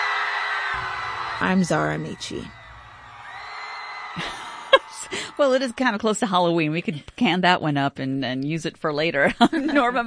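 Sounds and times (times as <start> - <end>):
group of people yelling loudly at a scream club meetup: 0.0 - 6.4
crowd noise: 0.0 - 6.8
speech: 0.8 - 2.6, 4.2 - 4.4, 5.4 - 10.0
sharp whooping shout: 2.6 - 5.7
laughter: 4.1 - 5.8, 9.2 - 10.0.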